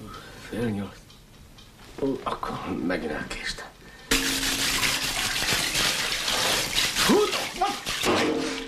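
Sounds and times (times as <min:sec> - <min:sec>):
speech: 0:00.5 - 0:01.0, 0:02.0 - 0:03.6
hot water running from a tap: 0:04.1 - 0:08.5.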